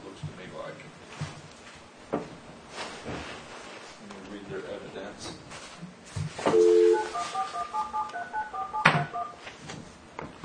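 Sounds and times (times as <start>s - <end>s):
low room noise: 0.0s - 10.4s
touch-tone telephone keypad beeps while dialing: 6.5s - 9.4s.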